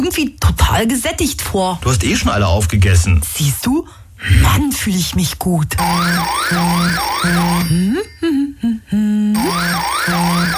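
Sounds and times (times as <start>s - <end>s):
speech: 0.1s - 10.5s
red telephone ringing with a warbling electronic trill: 5.8s - 8.1s, 9.4s - 10.5s.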